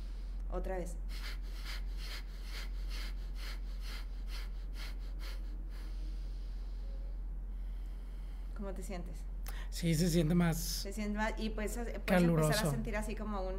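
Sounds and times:
faint rhythmic breathing in and out during a guided breathing exercise: 0.0s - 8.6s
speech: 0.5s - 1.5s, 8.6s - 13.5s.

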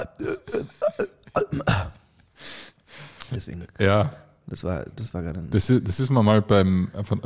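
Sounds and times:
croaky burp: 0.0s - 2.0s
speech: 3.4s - 7.2s.

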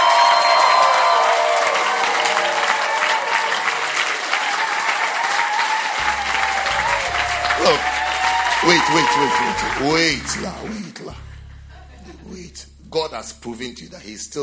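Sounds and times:
scattered cheers and whoops: 0.0s - 10.6s
large indoor crowd clapping: 0.0s - 11.0s
laughter: 6.0s - 12.6s
speech: 8.6s - 11.3s, 12.1s - 14.4s.

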